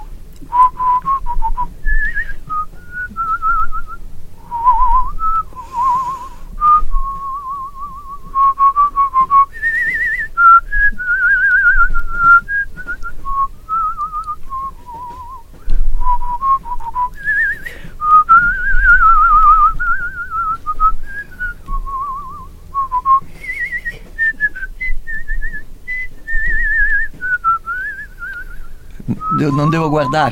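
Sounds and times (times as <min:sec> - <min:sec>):
person whistling a long lilting melody: 0:00.0 - 0:30.3
brief breaths: 0:05.5 - 0:06.6, 0:17.6 - 0:18.0, 0:23.2 - 0:24.2
speech: 0:29.4 - 0:30.3.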